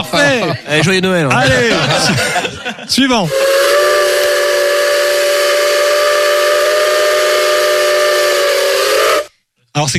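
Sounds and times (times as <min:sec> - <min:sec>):
speech: 0:00.1 - 0:03.6, 0:09.8 - 0:09.9
laughter: 0:00.5 - 0:03.2
steam locomotive whistle: 0:03.3 - 0:09.3.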